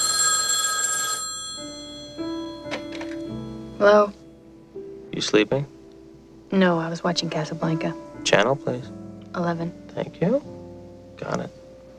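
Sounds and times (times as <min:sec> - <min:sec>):
telephone bell ringing: 0:00.0 - 0:03.2
speech: 0:03.8 - 0:04.2, 0:05.2 - 0:05.7, 0:06.5 - 0:10.6, 0:11.2 - 0:11.6.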